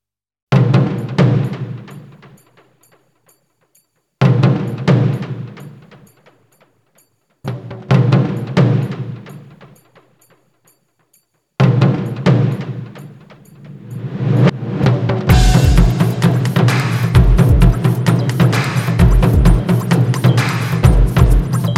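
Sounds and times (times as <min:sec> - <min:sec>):
drums: 0:00.5 - 0:03.2, 0:04.2 - 0:06.7, 0:07.4 - 0:10.4, 0:11.6 - 0:21.7.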